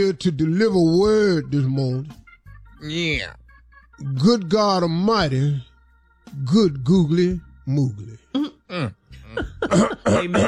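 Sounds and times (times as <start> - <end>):
speech: 0.0 - 2.2, 2.8 - 3.4, 4.0 - 5.7, 6.3 - 10.4
throat clearing at a morning church service: 8.3 - 10.4.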